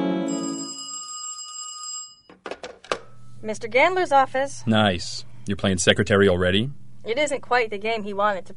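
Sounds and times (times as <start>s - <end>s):
telephone ringing with metallic bell tone: 0.2s - 2.4s
speech: 3.4s - 8.5s.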